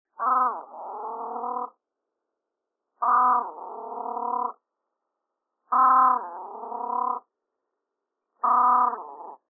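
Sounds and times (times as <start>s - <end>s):
great crested grebe giving harsh nasal barking calls: 0.1s - 1.7s, 3.0s - 4.6s, 5.7s - 7.2s, 8.4s - 9.4s.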